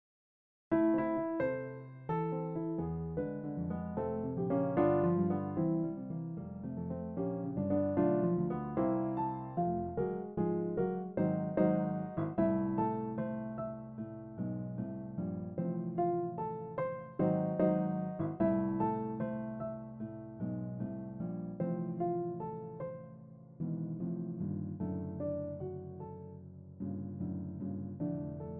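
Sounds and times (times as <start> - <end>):
short piano piece: 0.7 - 28.5.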